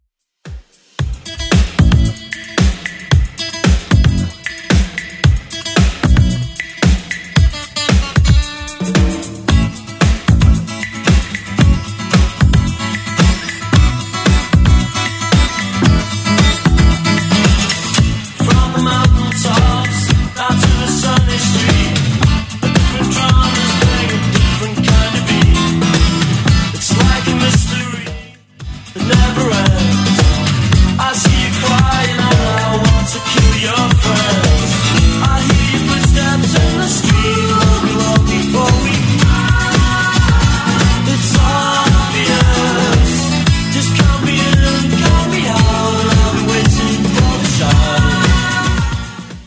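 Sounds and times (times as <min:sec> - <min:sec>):
80s rock drum beat: 0:00.5 - 0:49.4.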